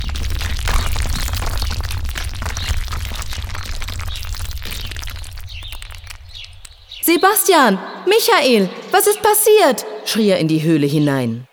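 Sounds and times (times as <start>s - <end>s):
rumble of rock tumbling down in a cave: 0.0s - 7.0s
speech: 7.1s - 11.5s.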